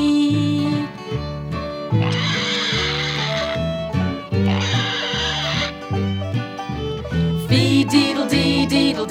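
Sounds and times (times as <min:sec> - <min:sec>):
bouncy musical backing: 0:00.0 - 0:09.0
pig oinking: 0:02.0 - 0:05.8.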